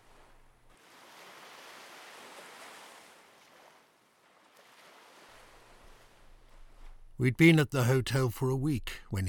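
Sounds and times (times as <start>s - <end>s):
sea waves washing onto a beach: 0.0s - 7.2s
speech: 7.2s - 9.2s.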